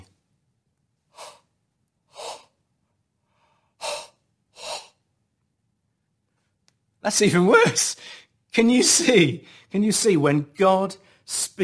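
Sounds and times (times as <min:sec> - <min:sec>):
exaggerated wordless breathing: 0:01.1 - 0:02.6, 0:03.2 - 0:05.1
speech: 0:07.0 - 0:11.6.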